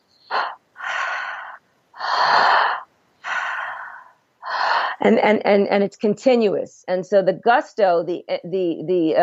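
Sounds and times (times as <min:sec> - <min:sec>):
breathwork breaths with deep throat inhales and relaxed exhales: 0:00.3 - 0:05.0
speech: 0:05.0 - 0:09.2.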